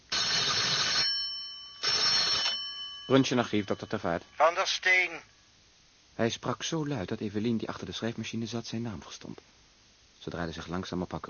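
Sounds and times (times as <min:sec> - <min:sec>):
telephone bell ringing in an archive basement: 0:00.1 - 0:04.6
speech: 0:03.1 - 0:05.4, 0:06.2 - 0:09.6, 0:10.2 - 0:11.2.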